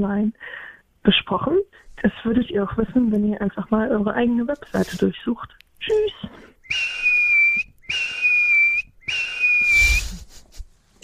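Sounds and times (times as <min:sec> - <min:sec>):
speech: 0:00.0 - 0:06.5
soft airy whistling: 0:06.6 - 0:10.4.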